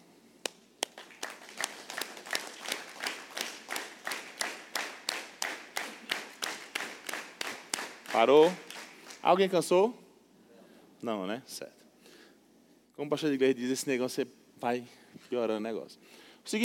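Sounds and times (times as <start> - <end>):
faint murmur of room noise: 0.0 - 16.6
seated group clapping in unison: 0.4 - 9.4
speech: 8.2 - 8.6, 9.2 - 10.0, 11.0 - 11.8, 13.0 - 16.6.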